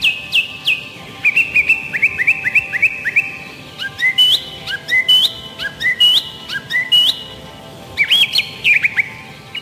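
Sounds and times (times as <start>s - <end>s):
song thrush singing whistled phrases: 0.0s - 9.6s.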